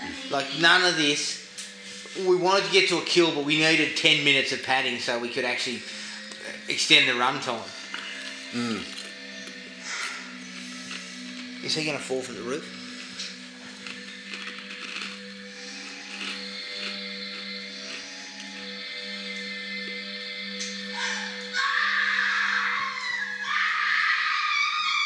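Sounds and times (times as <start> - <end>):
steady droning hum: 0.0 - 23.7
speech: 0.3 - 1.4, 2.1 - 6.0, 6.7 - 7.8, 8.5 - 9.0, 11.6 - 12.8
loud shrill screaming in a film scene: 20.9 - 25.0.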